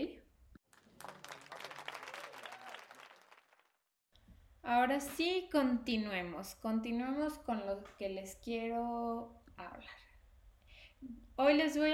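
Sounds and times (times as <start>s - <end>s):
crowd applause sound effect: 0.7s - 3.9s
speech: 4.7s - 10.1s, 11.0s - 11.9s.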